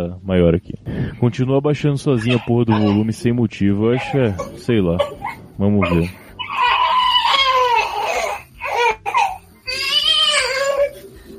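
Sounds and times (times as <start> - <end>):
speech: 0.0 - 6.2
baby crying: 2.2 - 11.1.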